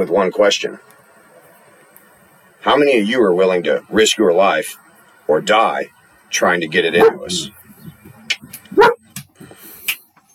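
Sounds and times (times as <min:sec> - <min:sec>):
speech: 0:00.0 - 0:01.0, 0:02.6 - 0:07.6
dog yipping and snuffling: 0:07.0 - 0:07.3, 0:08.7 - 0:09.0
dog barking: 0:07.0 - 0:07.4, 0:08.7 - 0:09.1.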